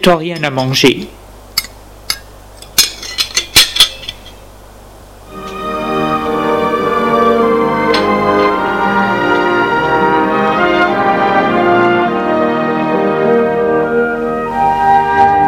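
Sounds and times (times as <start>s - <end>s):
speech: 0.0s - 1.2s
plates and cutlery clinking into a saucepan: 1.6s - 4.5s, 5.4s - 6.1s, 7.6s - 8.6s
steady droning tone: 4.1s - 15.4s.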